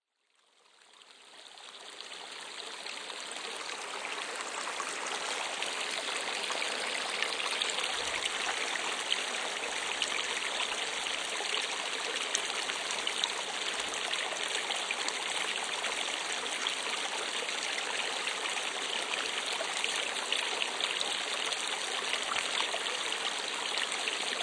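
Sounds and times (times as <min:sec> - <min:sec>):
babbling brook: 0:00.3 - 0:24.4.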